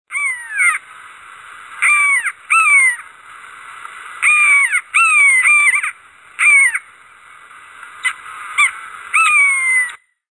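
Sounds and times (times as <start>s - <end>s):
buzzard calling: 0.1s - 0.8s, 1.8s - 3.1s, 4.2s - 6.9s, 8.0s - 10.0s.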